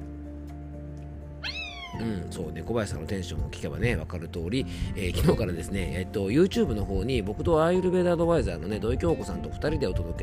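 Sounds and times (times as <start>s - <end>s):
single short cat meow: 1.4s - 2.1s
speech: 2.0s - 10.2s.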